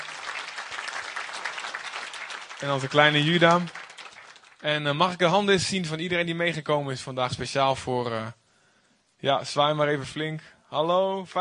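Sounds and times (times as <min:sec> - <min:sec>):
audience applauding: 0:00.0 - 0:04.6
speech: 0:02.6 - 0:03.8, 0:04.6 - 0:08.4, 0:09.2 - 0:11.3.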